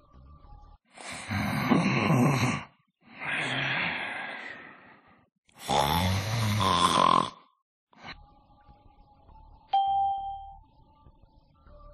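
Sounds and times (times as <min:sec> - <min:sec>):
sleeping man snoring: 0:01.0 - 0:03.9, 0:05.5 - 0:07.6
faint brief chime: 0:09.7 - 0:10.7.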